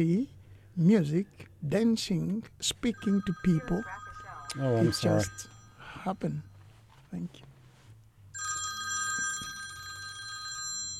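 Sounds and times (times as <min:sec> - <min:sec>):
speech: 0:00.0 - 0:06.5, 0:07.1 - 0:07.5
faint low hum: 0:00.0 - 0:08.4
telephone ringing with an electronic trill: 0:02.9 - 0:06.4, 0:08.4 - 0:10.9.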